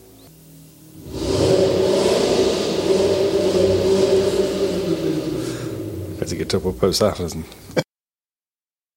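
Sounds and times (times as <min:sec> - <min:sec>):
car engine starting and revving: 0:00.9 - 0:07.4
speech: 0:06.5 - 0:07.6.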